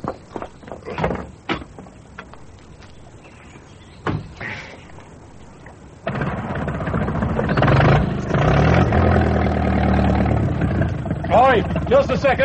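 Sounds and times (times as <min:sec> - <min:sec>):
clunks and rattles: 0:00.0 - 0:02.4, 0:06.0 - 0:12.1
engine cranking and idling with a loud rumble: 0:06.0 - 0:12.4
speech: 0:11.9 - 0:12.4.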